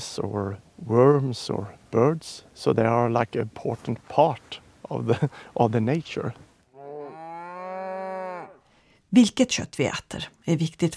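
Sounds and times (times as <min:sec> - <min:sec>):
speech: 0:00.0 - 0:06.4, 0:09.1 - 0:10.9
cow in a free-ranging herd of about thirty cattle mooing: 0:06.7 - 0:08.7.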